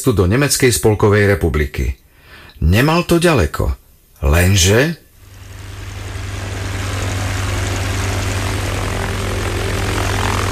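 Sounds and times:
speech: 0:00.0 - 0:02.0, 0:02.6 - 0:05.0
heavy combat helicopter rotor and engine roar overhead: 0:05.2 - 0:10.5.

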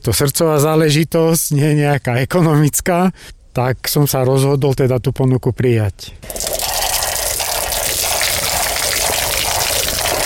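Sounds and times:
speech: 0:00.0 - 0:06.5
spring water pouring from a spout: 0:06.2 - 0:10.2.

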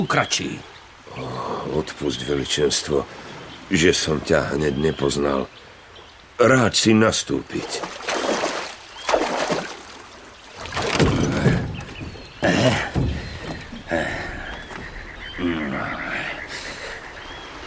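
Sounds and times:
speech: 0:00.0 - 0:05.6, 0:06.4 - 0:08.0
frogs croaking: 0:00.0 - 0:17.6
oars dipping and splashing as a small boat is rowed: 0:07.4 - 0:15.4.

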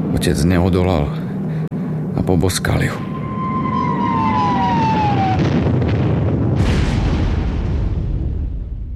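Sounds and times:
speech: 0:00.1 - 0:01.3, 0:02.3 - 0:03.1
falling whistle: 0:03.0 - 0:05.5
explosion: 0:04.2 - 0:08.9.

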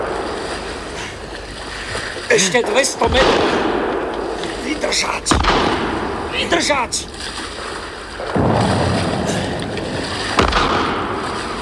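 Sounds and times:
speech: 0:02.3 - 0:03.7, 0:04.8 - 0:07.4
ship's cannon firing: 0:02.7 - 0:11.6.

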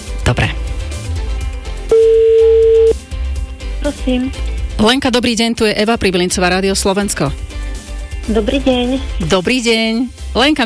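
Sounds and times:
speech: 0:00.3 - 0:00.7, 0:03.9 - 0:07.5, 0:08.2 - 0:10.6
telephone line tone as a number is dialed: 0:01.9 - 0:03.0.

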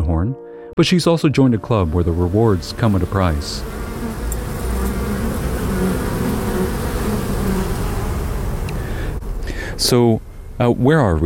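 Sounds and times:
speech: 0:00.2 - 0:03.8, 0:09.8 - 0:11.2
honeybees buzzing at a school beekeeping range: 0:01.7 - 0:10.0.

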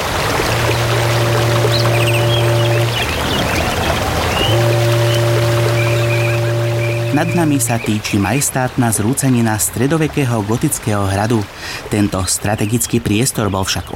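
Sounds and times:
low droning engine hum: 0:00.0 - 0:08.0
river water flowing at a confluence: 0:00.0 - 0:12.4
speech: 0:07.2 - 0:13.9.

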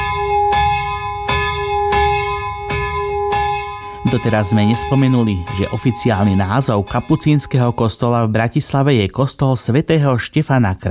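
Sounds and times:
large church bell rung by hand rope tolling: 0:00.0 - 0:08.9
speech: 0:04.1 - 0:10.8.

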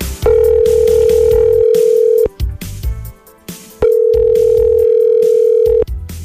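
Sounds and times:
telephone ring tones for a call being placed: 0:00.2 - 0:02.3, 0:03.8 - 0:05.8.

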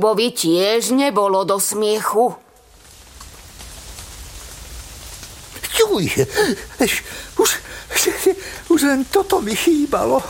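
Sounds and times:
speech: 0:00.0 - 0:02.4, 0:06.0 - 0:10.2
falling hail: 0:02.5 - 0:10.2
heavy downpour: 0:02.5 - 0:10.2.

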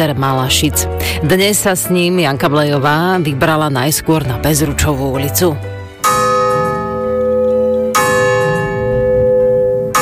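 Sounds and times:
speech: 0:00.0 - 0:05.8
church bells ringing: 0:05.1 - 0:10.0.

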